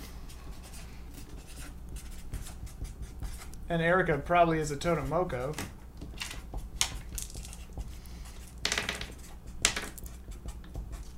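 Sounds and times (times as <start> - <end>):
pen or pencil scratching while writing: 0.6 - 3.5, 7.5 - 11.1
speech: 3.7 - 5.8.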